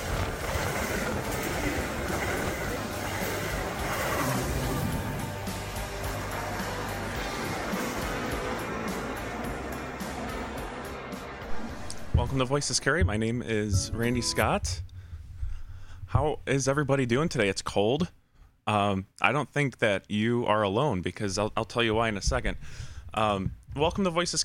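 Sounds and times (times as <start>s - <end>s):
express commuter train passing through station: 0.0s - 15.6s
speech: 12.3s - 14.9s, 16.2s - 24.4s.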